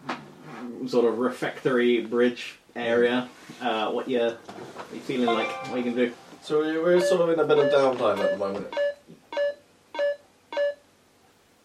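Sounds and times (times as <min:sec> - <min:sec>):
speech: 0:00.8 - 0:08.9
phone alarm electronic beeps: 0:07.0 - 0:10.8.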